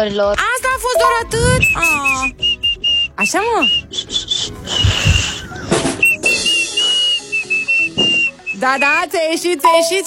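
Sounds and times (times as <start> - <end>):
speech: 0.0 - 2.4, 3.2 - 5.3, 8.6 - 10.0
10-year-old child whistling through pursed lips: 1.0 - 5.4, 6.0 - 9.0.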